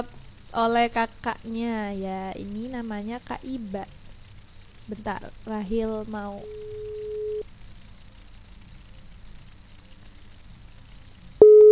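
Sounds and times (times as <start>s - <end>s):
speech: 0.0s - 4.0s, 4.9s - 6.8s
faint hum: 0.0s - 11.7s
steady electronic phone ringback tone beeps: 6.4s - 7.4s, 11.4s - 11.7s.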